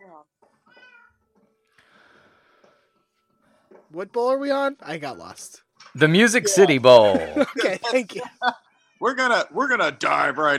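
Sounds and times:
cats meowing: 0.7 - 1.2
speech: 3.9 - 10.5
laughter: 6.0 - 8.6.

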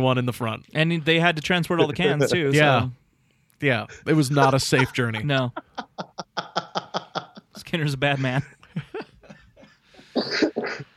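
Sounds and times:
speech: 0.0 - 3.0, 3.6 - 6.5, 7.7 - 8.9
laughter: 1.8 - 2.4, 3.9 - 10.9
person coughing: 9.6 - 10.9.

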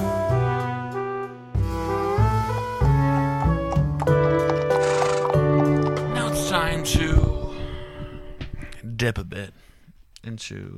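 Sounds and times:
short bright instrumental segment transition jingle: 0.0 - 8.3
speech: 9.0 - 9.6, 10.2 - 10.7.

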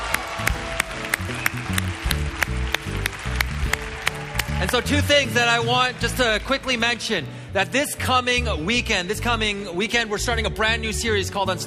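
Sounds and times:
crowd applauding: 0.0 - 7.3
soft keyboard-like music: 0.0 - 11.6
speech: 4.6 - 11.6.

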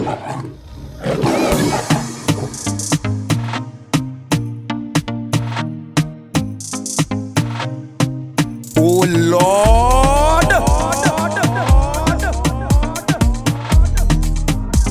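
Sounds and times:
lion roaring: 0.0 - 2.1
speech: 0.1 - 1.9
upbeat driving music track with punchy percussive beat and bass line: 1.8 - 14.8
laughter: 9.3 - 14.8.

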